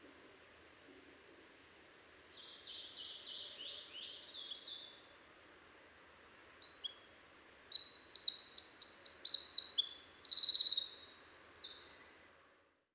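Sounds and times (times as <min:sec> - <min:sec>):
Eurasian wren Troglodytes troglodytes song trills: 0:02.4 - 0:05.2, 0:06.2 - 0:12.3.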